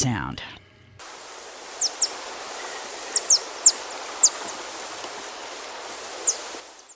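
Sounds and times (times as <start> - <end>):
speech: 0.0 - 0.6
Vaux's swifts chipping and twittering: 1.0 - 6.9
steady rushing background: 1.0 - 6.9.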